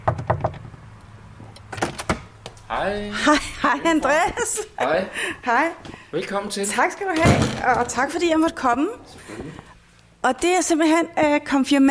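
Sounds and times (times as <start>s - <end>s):
knocking on a door at a church's confirmation room: 0.0s - 0.6s
speech: 2.7s - 9.6s, 10.2s - 11.8s.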